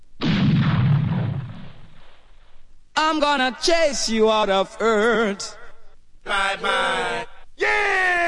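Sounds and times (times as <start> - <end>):
gunshot blast: 0.2 - 2.6
speech: 3.1 - 5.6, 6.3 - 8.1.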